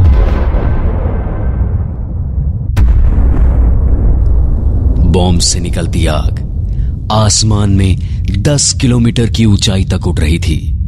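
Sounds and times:
sharp crack of atomic bomb test explosion: 0.0 - 6.8
massive atomic bomb test explosion roaring in the New Mexico desert: 0.0 - 8.3
heavy rolling thunder of atomic bomb test explosion: 0.0 - 9.0
speech: 5.4 - 6.4, 7.1 - 10.7.

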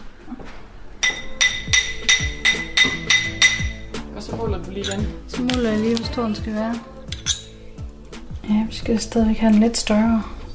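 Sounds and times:
metal hammer tapping a small gold ring: 1.0 - 3.9
speech: 4.4 - 6.9, 8.5 - 10.4.

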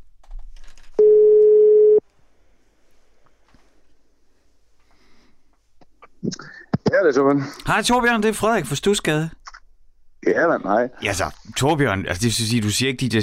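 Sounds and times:
telephone ringback tone while placing a call: 1.0 - 2.0
speech: 7.0 - 9.4, 10.3 - 13.2.

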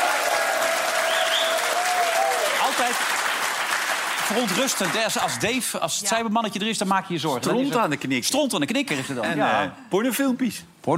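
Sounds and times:
audience applause: 0.0 - 5.5
speech: 4.3 - 10.9.

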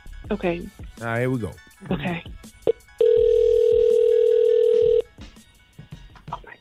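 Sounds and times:
speech: 0.3 - 2.6
electronic telephone ring tone on an outgoing call: 2.7 - 5.1.

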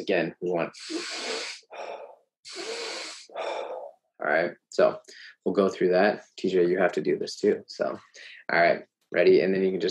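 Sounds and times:
speech: 0.0 - 1.3, 4.2 - 9.8
person breathing in through the nose and out through the mouth: 0.7 - 4.0.

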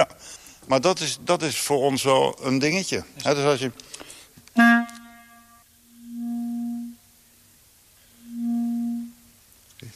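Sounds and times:
speech: 0.7 - 4.0
low rich musical tone with a sharp attack: 4.6 - 7.1, 8.1 - 9.4.

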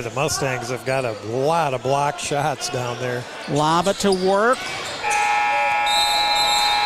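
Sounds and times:
speech: 0.0 - 4.9
faint crowd noise at a boys basketball game: 0.0 - 6.8
basketball arena end-of-quarter buzzer: 5.0 - 6.8.

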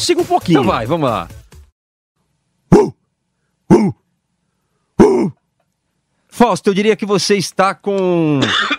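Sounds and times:
speech: 0.0 - 1.4, 3.7 - 4.0, 6.4 - 8.7
person imitating a dog barking: 2.7 - 3.1, 3.7 - 4.1, 5.0 - 5.4.

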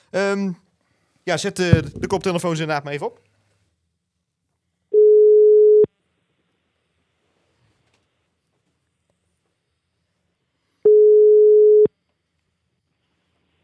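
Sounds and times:
speech: 0.1 - 0.6, 1.3 - 3.3
telephone ringback tone while dialing out: 5.0 - 5.9, 10.9 - 11.9.

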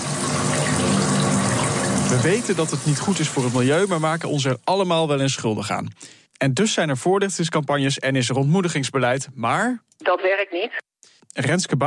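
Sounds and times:
shower water running: 0.0 - 5.4
speech: 2.1 - 11.8.

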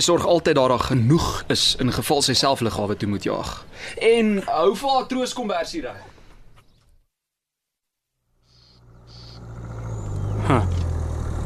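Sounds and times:
speech: 0.0 - 6.1
car engine rumbling as the car drives closer: 8.4 - 11.4.

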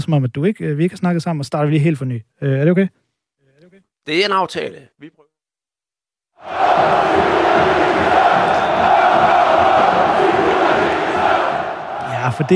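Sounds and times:
speech: 0.0 - 3.0, 4.0 - 5.2, 6.4 - 7.8, 12.3 - 12.5
football fans rioting and shouting in southern Brazil: 6.4 - 12.5.

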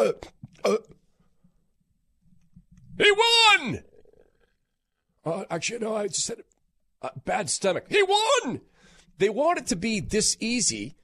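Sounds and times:
speech: 0.0 - 0.9, 3.0 - 3.9, 5.2 - 11.0
voice imitating burps with throaty bursts: 0.0 - 1.0.

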